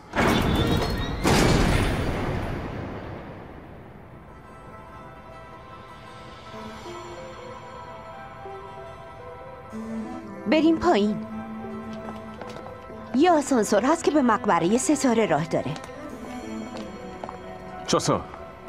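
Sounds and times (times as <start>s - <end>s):
video game door opening with heavy crashing rumble: 0.1s - 4.3s
speech: 10.5s - 11.3s, 13.2s - 15.9s, 17.9s - 18.4s.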